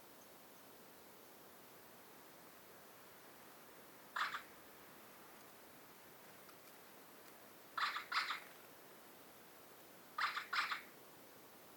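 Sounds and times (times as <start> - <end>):
Eurasian magpie Pica pica giving harsh grating chacks: 4.2 - 4.5, 7.8 - 8.5, 10.2 - 10.9.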